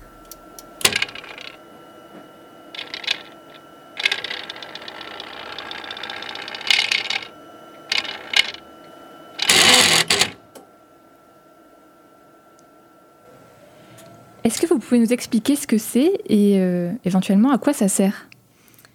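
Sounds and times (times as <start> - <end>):
gas chromatograph whirring and clicking in a lab: 0.0 - 10.7, 12.6 - 14.8
speech: 14.5 - 18.3.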